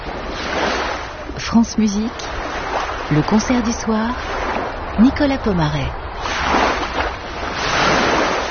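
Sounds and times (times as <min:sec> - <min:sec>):
ocean waves at Montpellier washing: 0:00.0 - 0:08.4
speech: 0:01.5 - 0:02.5, 0:03.1 - 0:04.4, 0:05.0 - 0:06.3.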